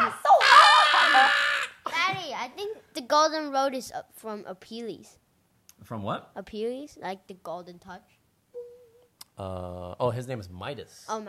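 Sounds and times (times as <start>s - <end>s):
person screaming playfully: 0.0s - 1.8s
speech: 3.1s - 5.2s, 5.8s - 8.2s, 9.4s - 11.2s.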